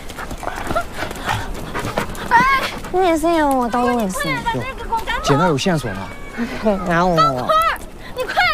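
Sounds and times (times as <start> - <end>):
dog panting: 0.0 - 4.8
speech: 3.0 - 7.6.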